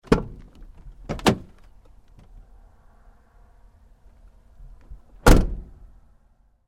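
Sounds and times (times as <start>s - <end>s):
van truck door opening and closing: 0.0s - 2.4s, 5.1s - 5.8s.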